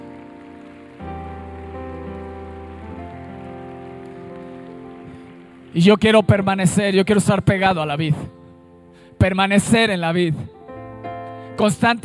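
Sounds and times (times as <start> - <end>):
crowd applauding: 0.0 - 7.3
sustained keyboard or organ chords: 0.0 - 12.0
speech: 5.7 - 8.4, 9.2 - 10.6, 11.6 - 12.0.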